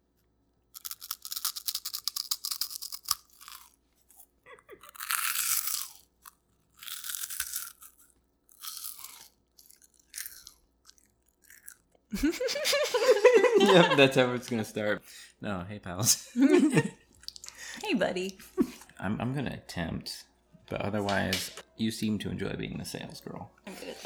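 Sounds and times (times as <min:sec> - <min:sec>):
cheese puffs being crunched and chewed: 0:00.7 - 0:12.2
laughter: 0:12.1 - 0:15.1, 0:16.0 - 0:19.0, 0:23.7 - 0:24.0
speech: 0:12.2 - 0:17.0, 0:18.0 - 0:23.6.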